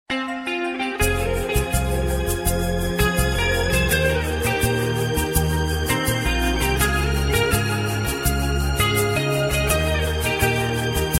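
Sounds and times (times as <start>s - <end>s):
instrumental music: 0.1s - 11.1s.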